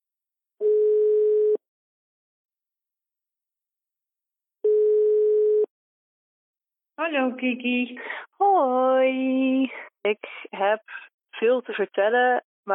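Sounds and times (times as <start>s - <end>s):
ringback tone of an outgoing telephone call: 0.6s - 1.6s, 4.6s - 5.7s
speech: 7.0s - 12.7s.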